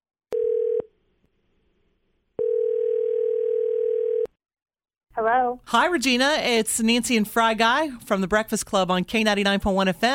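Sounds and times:
electronic telephone ringback tone on a call line: 0.3 - 0.9, 2.4 - 4.3
speech: 5.2 - 10.1.

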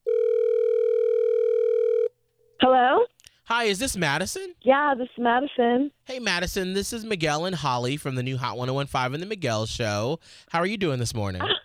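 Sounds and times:
telephone line tone: 0.0 - 2.1
speech: 3.5 - 11.6.

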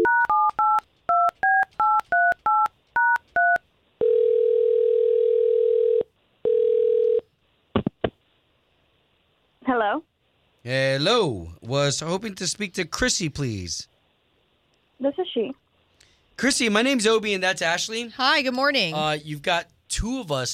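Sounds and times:
telephone keypad dialing beeps: 0.0 - 3.6
telephone ring tone: 0.0 - 7.3
speech: 9.8 - 13.9, 15.0 - 15.6, 16.4 - 20.5.

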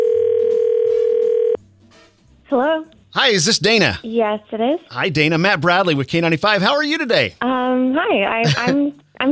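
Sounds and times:
telephone dial tone while calling: 0.0 - 1.6
speech: 2.5 - 9.3.

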